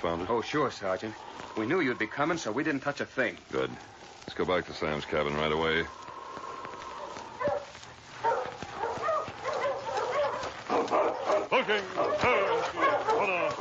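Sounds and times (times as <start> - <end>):
speech: 0.0 - 6.0, 11.7 - 13.5
sled dogs of a team barking yipping and whimpering in front of a cabin: 7.0 - 13.5.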